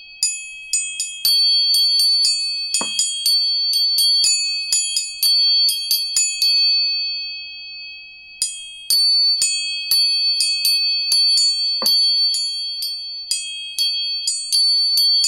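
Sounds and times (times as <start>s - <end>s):
three tuning forks struck and ringing: 0.2s - 15.1s
sharp metallic tap of tuning fork strikes: 2.8s - 3.1s, 11.8s - 12.0s.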